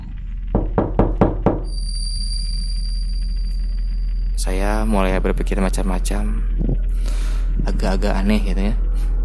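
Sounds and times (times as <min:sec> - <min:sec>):
faint high electronic whine: 0:00.0 - 0:09.2
knocking on a solid surface: 0:00.5 - 0:01.7
speech: 0:04.4 - 0:09.1.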